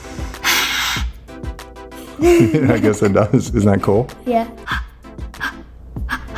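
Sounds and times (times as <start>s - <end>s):
loud breath blown straight into the microphone: 0.0s - 1.2s
laughter: 2.2s - 3.5s
speech: 2.2s - 4.8s.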